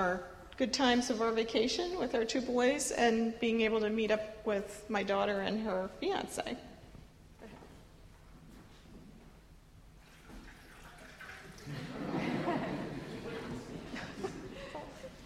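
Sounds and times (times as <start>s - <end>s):
speech: 0.0s - 6.7s
water from Pennsylvania pouring into a container: 10.0s - 11.9s
laughter: 11.6s - 15.2s.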